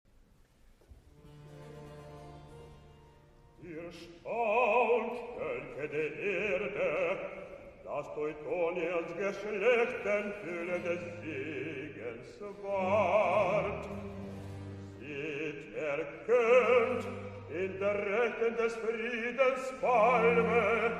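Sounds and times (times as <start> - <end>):
orchestra playing: 1.1 - 3.5, 10.6 - 18.8, 19.8 - 20.9
solo voices singing recitative: 3.6 - 20.9.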